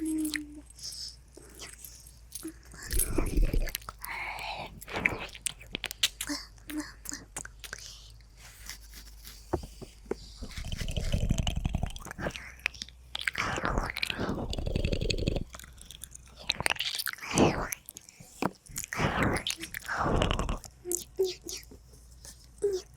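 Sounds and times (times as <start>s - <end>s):
faint low hum: 0.0s - 22.9s
ASMR ear eating and licking with wet clicks and smacks: 2.5s - 22.9s.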